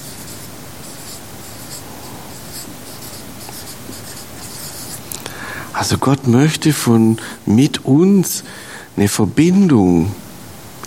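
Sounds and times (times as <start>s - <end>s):
scratchy writing on a board while drawing a ray: 0.0s - 5.1s
speech: 5.8s - 10.2s.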